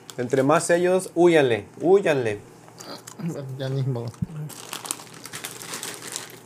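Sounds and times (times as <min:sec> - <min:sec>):
speech: 0:00.2 - 0:04.6
plastic wrapper of cookies-and-cream cookies crinkling as it is opened: 0:04.1 - 0:06.4.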